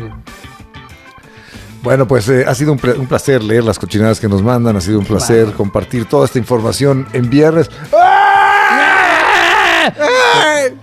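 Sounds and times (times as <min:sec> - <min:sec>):
speech: 0:01.8 - 0:08.5, 0:09.8 - 0:10.8
drawn-out human scream in a dungeon: 0:07.9 - 0:10.8.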